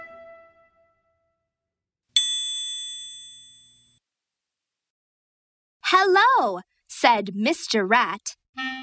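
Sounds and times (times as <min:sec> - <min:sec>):
doorbell ringing ding dong: 0:02.2 - 0:03.9
speech: 0:05.9 - 0:08.7.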